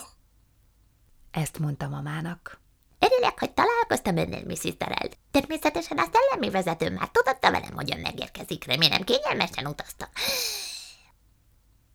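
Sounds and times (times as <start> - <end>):
speech: 1.4 - 10.7
voice imitating a sharp gasping intake of breath: 10.2 - 11.0.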